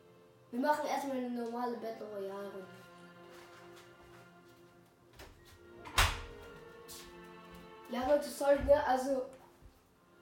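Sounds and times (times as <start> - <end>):
speech: 0.5 - 2.9, 7.9 - 9.4
door swinging shut: 5.2 - 6.4.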